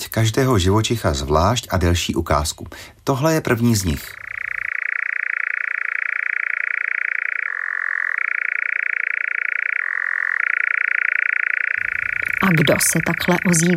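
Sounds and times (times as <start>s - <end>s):
speech: 0.1s - 4.2s, 12.5s - 13.7s
European nightjar churring call: 3.9s - 13.7s.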